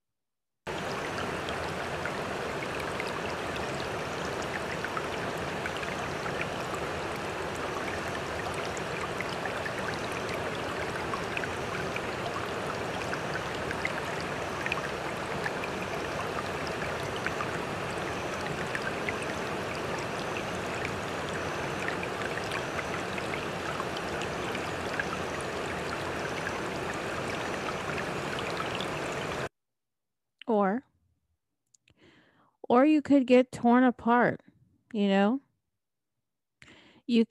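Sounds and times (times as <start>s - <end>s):
water streaming: 0.7s - 29.5s
speech: 30.5s - 30.8s, 32.7s - 35.4s, 37.1s - 37.2s.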